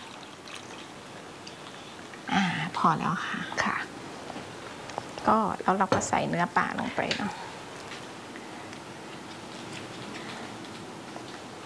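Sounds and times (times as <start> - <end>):
water poured into a cooking pot: 0.0 - 1.8
speech: 2.8 - 3.8, 5.2 - 7.5.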